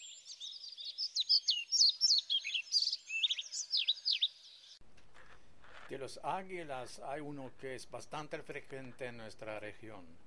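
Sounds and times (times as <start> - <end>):
pied flycatcher singing: 0.0 - 4.8
speech: 5.9 - 10.2.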